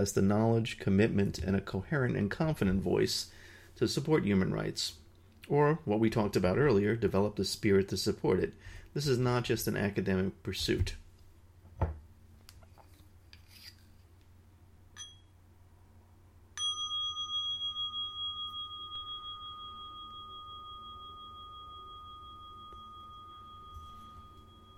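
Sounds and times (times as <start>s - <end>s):
speech: 0.0s - 11.0s
small bell ringing: 15.0s - 15.3s, 16.6s - 24.7s.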